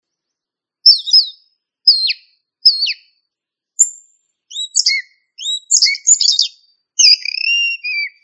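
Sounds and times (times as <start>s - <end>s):
thrush calling and singing: 0.0s - 8.2s.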